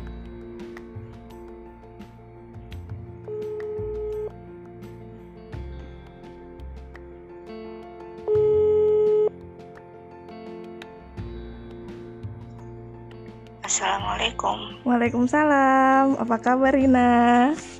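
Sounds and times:
soft music: 0.0s - 17.7s
telephone ringback tone of a phone call being placed: 3.3s - 4.4s, 8.3s - 9.3s
speech: 13.8s - 17.7s.

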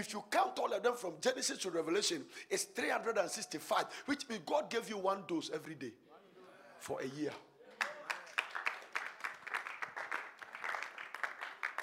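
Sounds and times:
speech: 0.0s - 6.1s, 6.8s - 7.5s
overlapping vocal sounds: 6.8s - 11.8s
crowd applauding during a Bible sermon: 7.7s - 11.8s.

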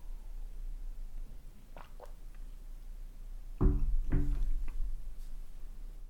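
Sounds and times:
quiet room hum: 0.0s - 6.0s
person sipping and swallowing water: 1.5s - 2.6s.

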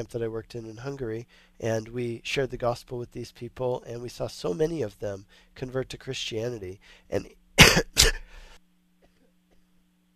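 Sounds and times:
speech: 0.0s - 8.2s
faint low hum: 0.0s - 10.1s
man coughing while speaking: 7.6s - 8.3s.

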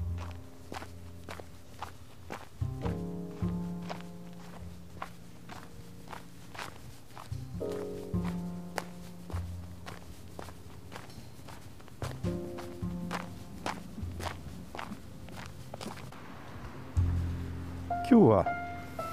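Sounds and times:
footsteps crunching along a snowy sidewalk: 0.0s - 16.2s
low droning hum: 0.0s - 19.0s
speech: 18.2s - 18.6s.

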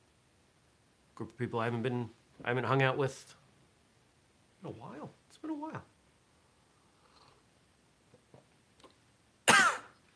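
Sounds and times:
speech: 1.2s - 3.4s, 4.6s - 5.9s
person coughing while drinking coffee: 9.5s - 10.0s.

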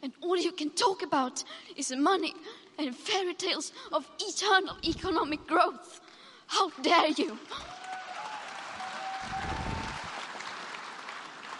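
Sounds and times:
speech: 0.3s - 7.8s
audience applauding: 7.4s - 11.5s
low rumble: 9.3s - 10.2s.

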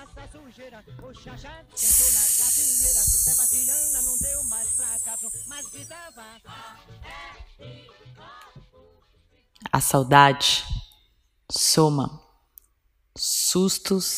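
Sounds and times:
speech: 0.3s - 8.9s, 9.7s - 10.7s, 11.5s - 12.2s, 13.2s - 14.1s
voice hissing the letter S sound: 1.8s - 6.1s
soft steady tonal background: 1.8s - 6.3s.

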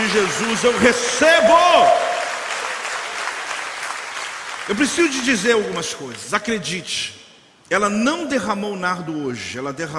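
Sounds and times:
audience applause: 0.0s - 5.4s
speech: 0.1s - 2.1s, 4.7s - 9.9s.

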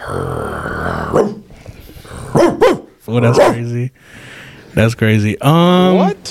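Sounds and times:
person imitating dog growl and barks: 0.0s - 3.6s
speech: 0.1s - 0.4s, 1.1s - 1.4s, 3.1s - 6.3s.

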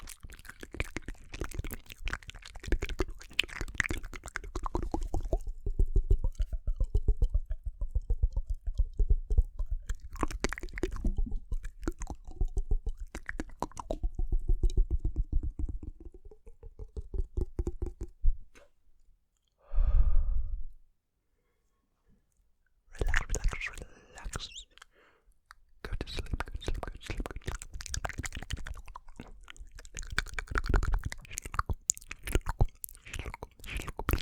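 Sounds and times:
wet mouth sounds of gum chewing: 0.0s - 18.7s, 22.9s - 34.2s
soft sigh: 19.6s - 20.8s.

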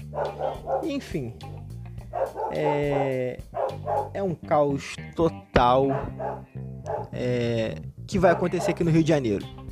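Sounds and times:
dog barking: 0.0s - 1.0s, 2.1s - 4.2s, 5.8s - 7.2s, 8.3s - 8.8s
speech: 0.1s - 1.5s, 2.3s - 9.6s.

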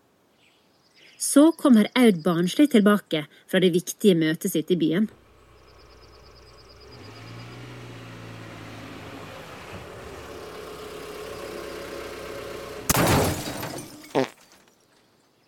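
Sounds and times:
speech: 1.2s - 5.2s
car engine rumbling while pulling into a parking spot: 4.7s - 14.1s
loud crunching burst: 7.3s - 14.4s.

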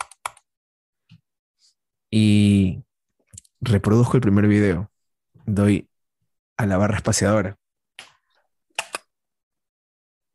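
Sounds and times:
speech: 2.1s - 2.8s, 3.6s - 4.9s, 5.5s - 5.9s, 6.6s - 7.6s
computer mouse clicks: 8.0s - 9.1s.

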